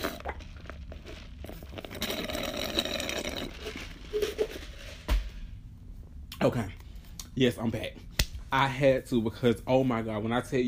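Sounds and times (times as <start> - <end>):
noisy slurping of hot tea: 0.0 - 5.0
speech: 6.4 - 6.8, 7.4 - 10.6.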